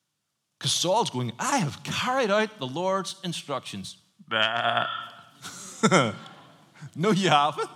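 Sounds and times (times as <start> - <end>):
speech: 0.6 - 7.7
sheep bleating: 4.3 - 5.3
laughter: 5.4 - 7.7.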